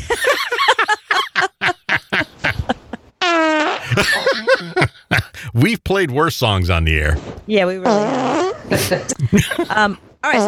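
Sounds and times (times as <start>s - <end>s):
laughter: 0.0s - 3.0s, 3.8s - 6.3s, 8.7s - 10.0s
loud fart noises: 3.2s - 4.0s, 7.8s - 9.2s, 10.2s - 10.4s
speech: 5.6s - 10.4s.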